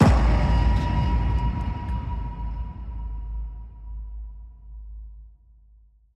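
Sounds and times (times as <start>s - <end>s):
big cinematic impact hit: 0.0s - 4.4s.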